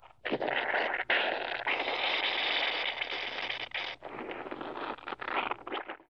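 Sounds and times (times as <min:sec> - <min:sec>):
steam bubbling: 0:00.0 - 0:06.1.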